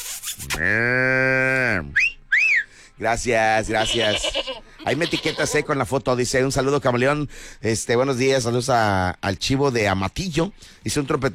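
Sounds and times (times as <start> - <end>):
speech: 0.6 - 1.2, 3.0 - 11.3
high whistling chirps: 1.9 - 2.8
calf mooing played as a sound effect: 3.7 - 5.7.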